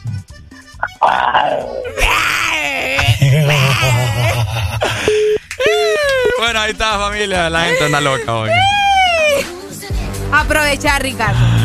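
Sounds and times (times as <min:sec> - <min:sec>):
speech: 0:00.8 - 0:02.2, 0:03.4 - 0:05.2, 0:06.4 - 0:08.8, 0:10.3 - 0:11.6
person imitating a tiger's growl with vocal roars and groans: 0:00.8 - 0:04.8, 0:11.3 - 0:11.6
laughter: 0:01.9 - 0:09.6.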